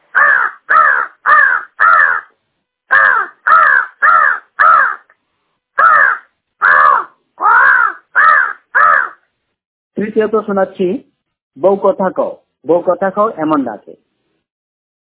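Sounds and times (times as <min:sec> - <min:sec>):
crow cawing: 0:00.1 - 0:02.3, 0:02.9 - 0:05.1, 0:05.8 - 0:09.3
speech: 0:10.2 - 0:14.0.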